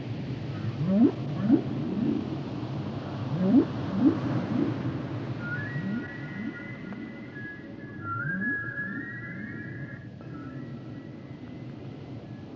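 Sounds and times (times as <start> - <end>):
steady background noise: 0.0 - 12.5
short low upswept whale calls: 0.5 - 2.4, 3.2 - 11.8
whale song of long drawn-out high whistles: 0.8 - 2.2, 3.3 - 4.8, 5.4 - 11.7.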